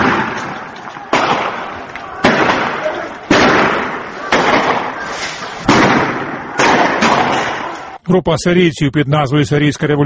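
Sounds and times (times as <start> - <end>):
gunshots at anti-government demonstrations in Syria: 0.0 - 8.0
indistinct shouting voices of protesters: 0.0 - 8.0
large protesting crowd roaring at anti-government demonstrations in Syria: 0.0 - 8.0
speech: 8.1 - 10.0.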